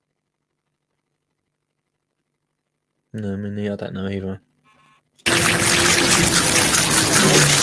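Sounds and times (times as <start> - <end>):
speech: 3.2 - 4.5
water poured onto pebbles: 5.3 - 7.6.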